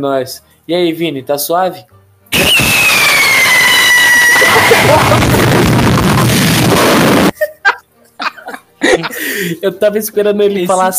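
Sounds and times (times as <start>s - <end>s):
speech: 0.0s - 3.0s, 4.8s - 5.4s, 9.4s - 10.9s
firework rocket roaring off with a harsh hissing blast: 2.3s - 7.3s
short laughs: 4.4s - 6.3s, 7.3s - 9.5s.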